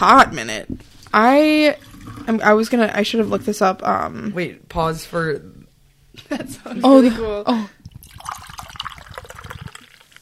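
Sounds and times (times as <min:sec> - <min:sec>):
speech: 0:00.0 - 0:05.6, 0:06.2 - 0:07.8
bubbly drink being poured: 0:07.8 - 0:10.1.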